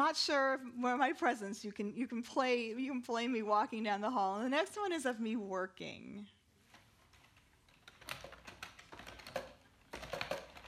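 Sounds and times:
speech: 0:00.0 - 0:06.4
fast typing on a computer keyboard: 0:07.1 - 0:10.6.

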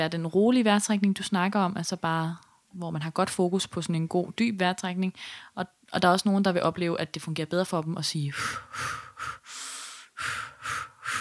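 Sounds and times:
speech: 0:00.0 - 0:09.4
long exhale: 0:08.3 - 0:11.2
short forceful breath puffs: 0:08.3 - 0:11.2.

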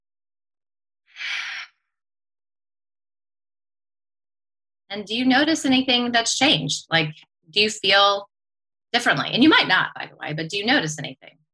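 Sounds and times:
deep breath in and out: 0:01.1 - 0:01.8
speech: 0:04.9 - 0:08.3, 0:08.9 - 0:11.4.

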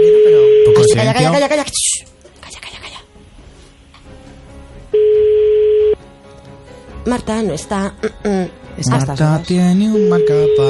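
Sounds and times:
telephone ringing tone: 0:00.0 - 0:01.0, 0:05.0 - 0:06.0, 0:09.9 - 0:10.6
speech: 0:00.9 - 0:02.7, 0:07.1 - 0:10.6.

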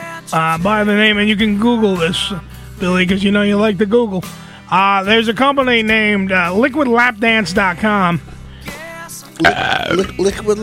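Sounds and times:
speech: 0:00.3 - 0:08.4, 0:09.4 - 0:10.6
person burping: 0:09.4 - 0:10.2.

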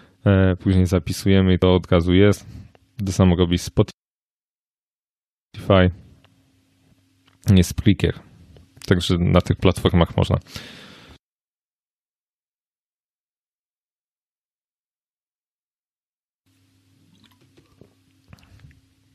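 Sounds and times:
faint steady hum: 0:00.0 - 0:04.0, 0:05.6 - 0:11.2, 0:16.5 - 0:19.1
speech: 0:00.2 - 0:04.0, 0:05.6 - 0:06.0, 0:07.4 - 0:08.3, 0:08.9 - 0:10.8
sip of water: 0:17.1 - 0:19.1
swallow: 0:17.1 - 0:19.1.

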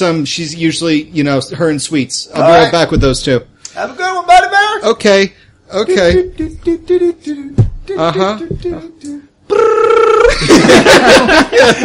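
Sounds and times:
speech: 0:00.0 - 0:11.8
vocal sounds: 0:05.9 - 0:10.4
laughter: 0:10.1 - 0:11.8.

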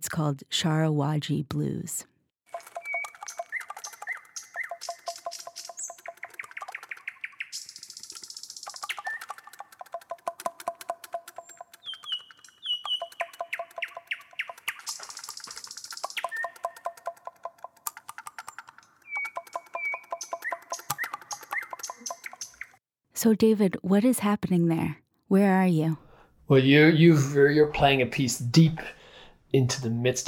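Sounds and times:
speech: 0:00.1 - 0:02.1, 0:23.2 - 0:30.2
nightingale singing: 0:02.8 - 0:09.8, 0:11.1 - 0:17.2, 0:19.0 - 0:22.8.

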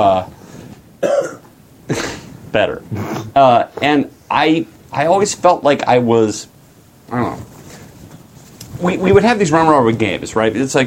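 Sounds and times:
speech: 0:00.0 - 0:00.4, 0:01.9 - 0:06.5, 0:07.1 - 0:07.5, 0:08.8 - 0:10.8
person coughing: 0:01.0 - 0:02.3.

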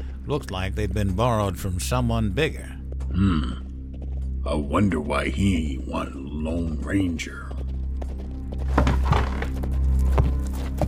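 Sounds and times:
speech: 0:00.3 - 0:03.6, 0:04.4 - 0:07.5
horse hoof thuds stopping outside: 0:08.6 - 0:10.8.

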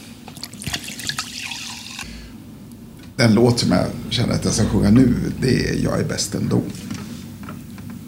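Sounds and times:
drinking water from a glass: 0:00.3 - 0:02.2
speech: 0:03.2 - 0:07.0.

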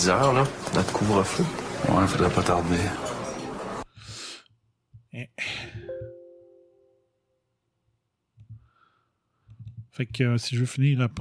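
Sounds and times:
speech: 0:00.0 - 0:03.1, 0:05.2 - 0:05.8, 0:10.0 - 0:11.2
doorbell ding-dong chime: 0:05.8 - 0:07.1.

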